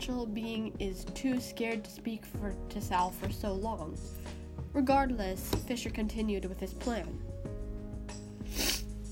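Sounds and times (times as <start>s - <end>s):
speech: 0.0s - 7.3s
loud sniffling: 8.4s - 9.0s.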